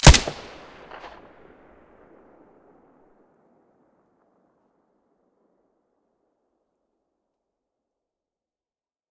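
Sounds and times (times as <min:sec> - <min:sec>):
silenced gunshot: 0:00.0 - 0:01.2.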